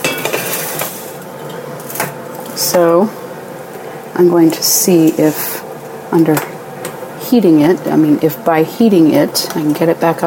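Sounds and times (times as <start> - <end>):
metal double boiler pot clanking and scraping: 0.0 - 0.8
speech: 2.6 - 3.2, 4.2 - 6.5, 7.3 - 10.2.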